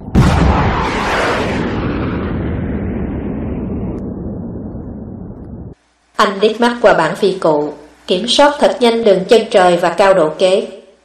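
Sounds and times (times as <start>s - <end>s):
bomb from a diving warplane exploding: 0.0s - 5.8s
speech: 6.2s - 10.8s.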